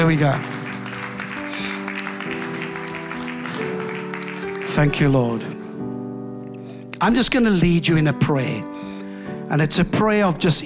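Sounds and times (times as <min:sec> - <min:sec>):
speech: 0:00.0 - 0:00.5, 0:04.8 - 0:05.5, 0:07.0 - 0:08.7, 0:09.5 - 0:10.6
church audience clapping: 0:00.0 - 0:05.9.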